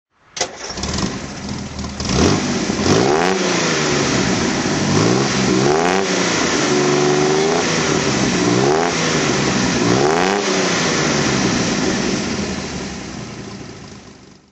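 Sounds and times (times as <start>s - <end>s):
Austin Healey 3000 MkIII engine throttle: 0.4s - 14.1s.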